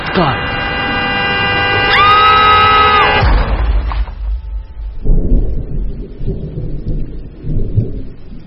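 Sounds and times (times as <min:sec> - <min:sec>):
car horn blaring: 0:00.0 - 0:03.6
car crashing into something: 0:03.0 - 0:05.9.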